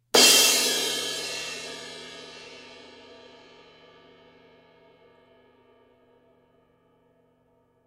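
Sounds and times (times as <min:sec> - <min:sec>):
A Avedis crash cymbal: 0:00.2 - 0:03.7.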